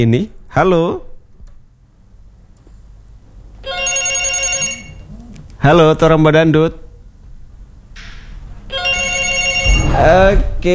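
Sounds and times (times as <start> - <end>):
speech: 0.0 - 1.1, 5.6 - 6.8, 10.0 - 10.7
phone ringing on an outgoing call: 3.6 - 5.2, 8.7 - 10.3.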